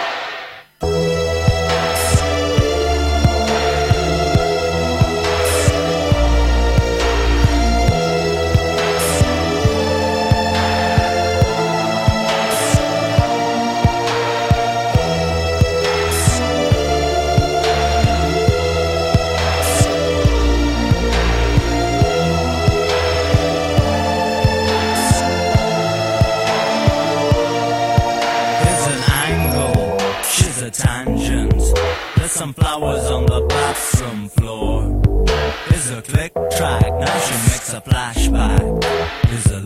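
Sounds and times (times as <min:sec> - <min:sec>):
electronic synth-pop track with synth chords, bass and percussion: 0:00.0 - 0:39.6.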